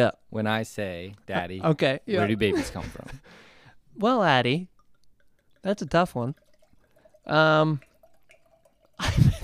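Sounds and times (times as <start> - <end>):
speech: 0.0 - 3.4, 4.0 - 4.7, 5.6 - 6.4, 7.2 - 7.9, 9.0 - 9.3
wine splashing into a glass: 4.7 - 9.4.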